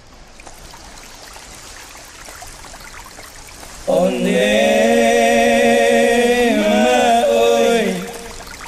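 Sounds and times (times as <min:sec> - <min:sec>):
soft hissing trickling ambience: 0:00.0 - 0:08.6
regional folk song with male voice over sustained accompaniment: 0:03.8 - 0:08.5
speech: 0:03.9 - 0:04.6.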